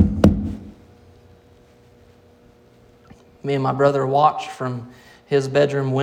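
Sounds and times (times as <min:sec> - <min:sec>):
heavy thump against a door: 0:00.0 - 0:00.8
speech: 0:03.4 - 0:06.0.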